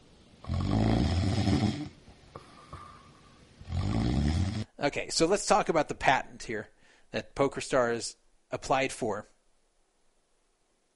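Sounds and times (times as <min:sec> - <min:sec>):
person snoring: 0:00.4 - 0:04.8
speech: 0:04.8 - 0:09.3.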